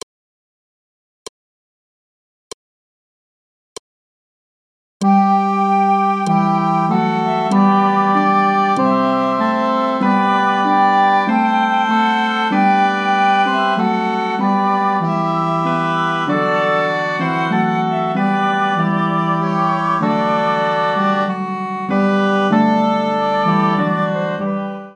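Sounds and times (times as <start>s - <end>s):
tenor canon on recorder: 5.0s - 24.9s.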